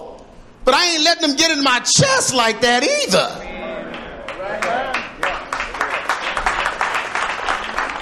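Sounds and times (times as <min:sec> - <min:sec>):
speech: 0:00.8 - 0:03.8
sparse audience clapping: 0:03.9 - 0:08.0.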